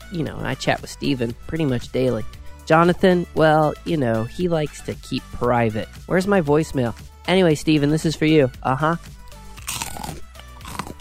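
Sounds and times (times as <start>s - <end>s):
speech: 0.1s - 10.2s
crunchy chewing: 9.4s - 10.9s.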